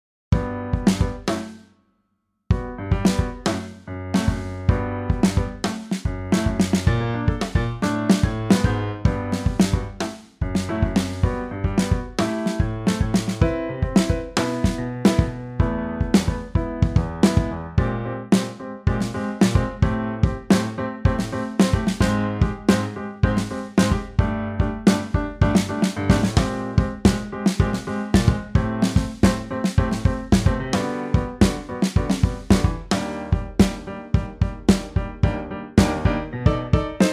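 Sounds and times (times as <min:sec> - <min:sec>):
kick drum: 0:00.4 - 0:01.3, 0:02.5 - 0:03.5, 0:04.2 - 0:18.1, 0:18.9 - 0:37.1.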